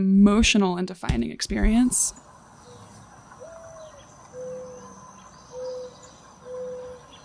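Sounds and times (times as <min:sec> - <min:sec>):
speech: 0:00.0 - 0:02.2
faint outdoor hum: 0:00.0 - 0:07.2
mourning dove cooing: 0:02.6 - 0:07.2.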